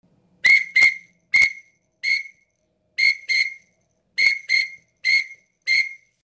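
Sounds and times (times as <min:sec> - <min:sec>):
Eurasian teal drake calling: 0:00.4 - 0:02.4, 0:03.0 - 0:03.6, 0:04.2 - 0:06.1.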